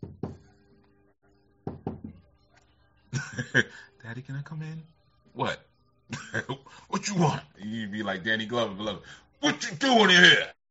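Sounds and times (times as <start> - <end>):
sharp knocks on a door: 0.0 - 0.5, 1.6 - 2.3
speech: 3.1 - 10.6.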